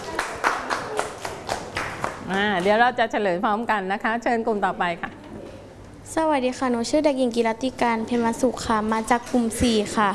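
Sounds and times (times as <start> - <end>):
children clapping in a classroom: 0.0 - 2.7
speech: 2.3 - 5.2, 6.1 - 10.1.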